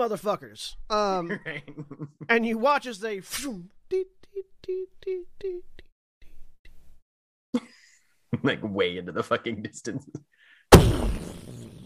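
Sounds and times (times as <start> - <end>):
speech: 0.0 - 5.8, 7.6 - 11.2
thermal detonator explosion blast: 10.7 - 11.8.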